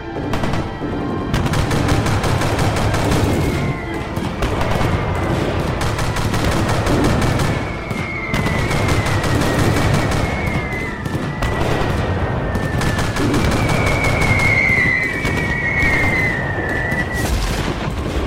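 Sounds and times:
sustained rapid gunfire at a large falling bomb: 0.3 - 18.1
whistling, squealing tones: 3.2 - 4.4, 7.3 - 17.3.

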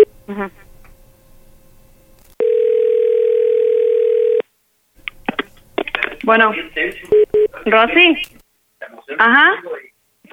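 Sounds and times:
speech: 0.3 - 0.7, 6.3 - 8.4, 9.2 - 10.3
telephone ringing tone on outgoing prank call from private number: 2.4 - 4.4.

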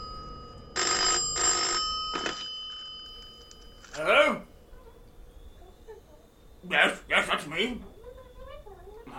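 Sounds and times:
telephone bell ringing: 0.0 - 4.6
speech: 7.6 - 7.9.

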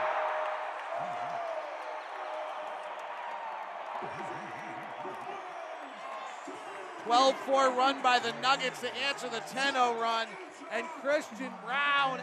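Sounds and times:
whoops and shouting: 0.0 - 4.2
large arena crowd at a basketball game cheering after a three-pointer: 0.0 - 12.2
speech: 4.0 - 12.2.

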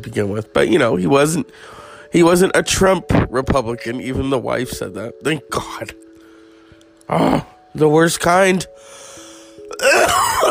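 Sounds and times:
speech: 0.0 - 6.0, 7.1 - 9.0
person clearing throat with a gravelly rasp: 9.7 - 10.4.

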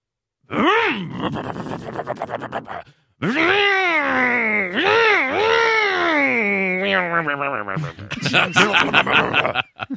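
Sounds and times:
voice imitating 1960s American muscle car engine revving: 0.5 - 8.0
laughter: 6.9 - 9.9.

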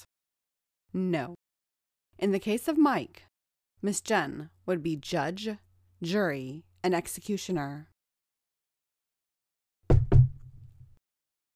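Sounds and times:
speech: 1.0 - 1.4, 2.2 - 7.9
knocking on a wooden door: 9.8 - 10.7.

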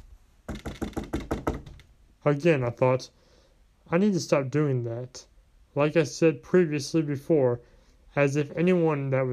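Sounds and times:
firm knocking on a wooden door: 0.5 - 1.9
speech: 2.2 - 3.2, 3.9 - 9.3.

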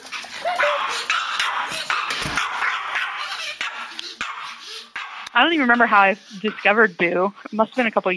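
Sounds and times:
Pomeranian dog yipping and whimpering: 0.2 - 4.9
speech: 5.4 - 8.1.

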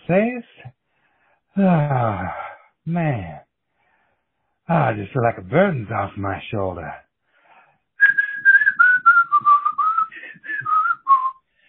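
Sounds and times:
speech: 0.1 - 0.8, 1.6 - 3.4, 4.7 - 7.0
person whistling a cheerful melody: 8.0 - 11.4.

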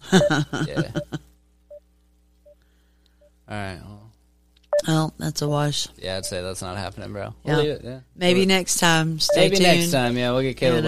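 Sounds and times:
speech: 0.1 - 1.2, 3.5 - 4.0, 4.8 - 10.8
short pure electronic beep from a call dial tone: 9.3 - 9.8.

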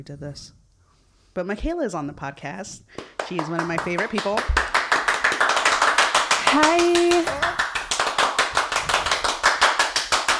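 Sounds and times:
speech: 0.0 - 0.6, 1.4 - 4.6, 6.5 - 7.7
rapid hand clapping: 3.0 - 10.3.

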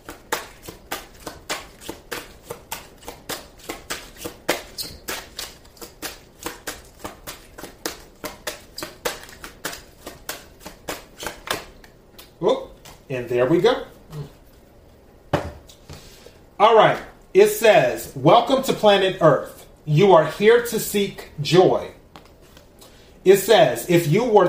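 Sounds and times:
cards being shuffled for an astrology card reading: 0.0 - 13.1, 22.1 - 22.8
speech: 13.2 - 13.9, 16.6 - 21.9, 23.2 - 24.4.

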